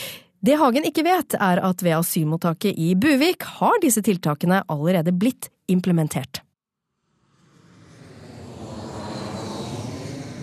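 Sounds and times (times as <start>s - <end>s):
speech: 0.4s - 6.4s
jumbo jet engine roar on approach: 7.2s - 10.4s.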